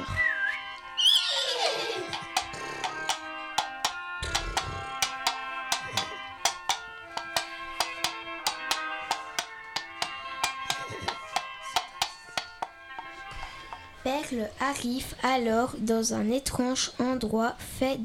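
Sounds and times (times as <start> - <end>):
horse giving a loud descending whinny: 1.0 - 2.9
horse hoofbeats clopping in a quick even rhythm: 1.0 - 13.9
speech: 14.3 - 18.0.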